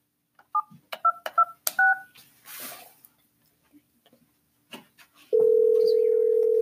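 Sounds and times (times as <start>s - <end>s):
touch-tone beeps of a phone number being dialed: 5.4s - 6.6s.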